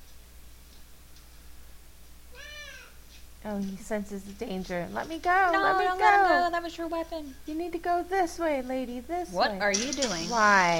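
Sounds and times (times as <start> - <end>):
quiet hum: 0.0 - 10.7
cat meowing: 2.3 - 2.9
speech: 3.4 - 10.7.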